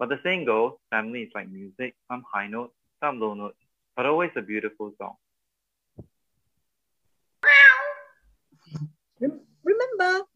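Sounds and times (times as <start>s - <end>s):
speech: 0.0s - 5.2s, 8.7s - 10.3s
cat meowing: 7.4s - 8.2s.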